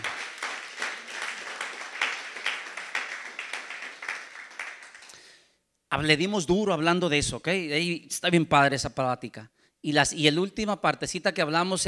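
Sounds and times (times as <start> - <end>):
crowd applauding: 0.0 - 5.3
speech: 5.9 - 11.8.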